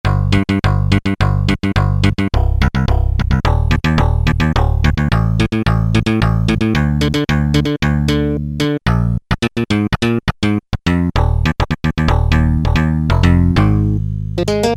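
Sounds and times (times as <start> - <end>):
kick drum: 0.0 - 8.0, 10.9 - 13.8
bass: 0.0 - 14.7.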